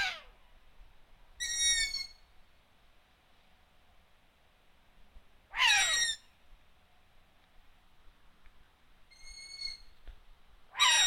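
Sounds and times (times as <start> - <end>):
Long-eared owl uttering harsh falling squeals and thin level squeak: 1.4 - 2.2, 5.6 - 6.2, 9.1 - 9.9, 10.8 - 11.0.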